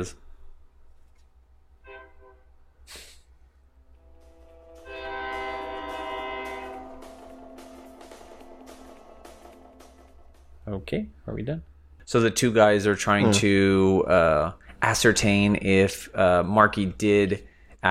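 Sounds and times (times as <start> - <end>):
speech: 0.0 - 0.2, 10.7 - 17.8
train horn blasts: 1.8 - 2.6, 3.8 - 9.8
train rumbling past outside: 4.0 - 10.7.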